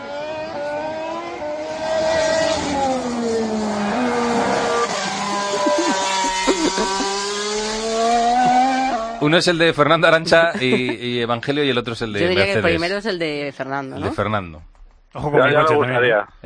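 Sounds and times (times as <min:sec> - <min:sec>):
racing car engine screaming at high revs: 0:00.0 - 0:10.9
laughter: 0:05.1 - 0:07.4, 0:10.1 - 0:12.8, 0:14.0 - 0:14.2, 0:15.2 - 0:16.4
speech: 0:09.3 - 0:16.4.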